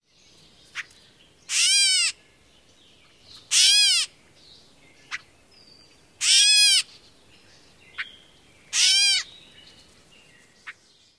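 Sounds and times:
Gray Catbird mews and kwuts: 0.7s - 2.2s, 3.3s - 4.2s, 6.2s - 7.1s, 7.9s - 9.8s.

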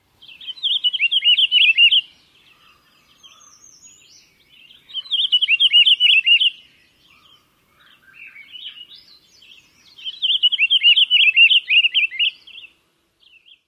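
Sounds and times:
Pine Grosbeak song: 0.0s - 13.6s.

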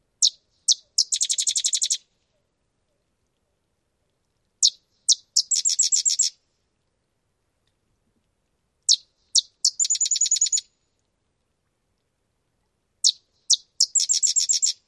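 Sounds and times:
Sedge Wren song: 0.2s - 2.0s, 4.6s - 6.3s, 8.9s - 10.7s, 13.0s - 14.8s.

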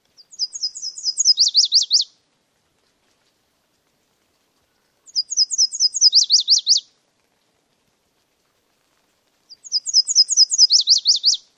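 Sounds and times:
bird singing: 0.2s - 2.1s, 5.1s - 6.8s, 9.5s - 11.4s.

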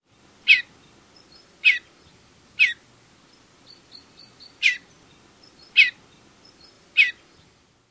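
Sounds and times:
juvenile Mountain Bluebird calls: 0.4s - 7.6s.

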